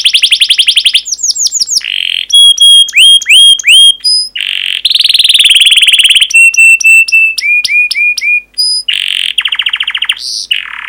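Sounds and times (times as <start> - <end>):
canary singing long pancingan style song with trills and whistles: 0.0 - 10.8.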